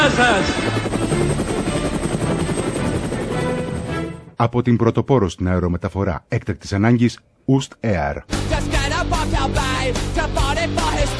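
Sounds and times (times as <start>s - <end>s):
speech: 0.0s - 1.3s, 4.4s - 11.1s
GAP 4 helicopter flying with rotor thrum and engine roar: 0.0s - 4.2s.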